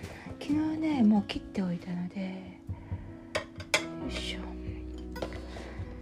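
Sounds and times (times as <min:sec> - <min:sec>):
speech: 0:00.5 - 0:02.5
plates and cutlery clinking: 0:03.4 - 0:04.0, 0:05.0 - 0:05.6.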